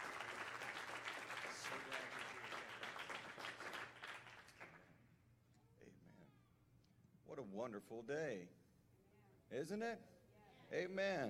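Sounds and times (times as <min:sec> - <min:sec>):
church audience applauding: 0:00.0 - 0:04.8
speech: 0:07.3 - 0:08.6, 0:09.5 - 0:11.2.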